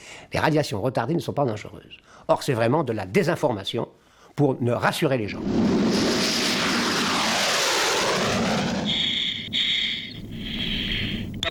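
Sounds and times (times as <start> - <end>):
speech: 0.3 - 5.8
Vautour jet aircraft flying past: 5.3 - 11.2.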